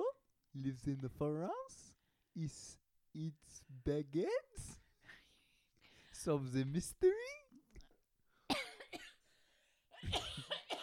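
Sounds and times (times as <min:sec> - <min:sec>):
speech: 0:00.5 - 0:04.8, 0:06.2 - 0:07.4
coughing after choking while breathing and swallowing: 0:08.5 - 0:09.3, 0:09.9 - 0:10.8.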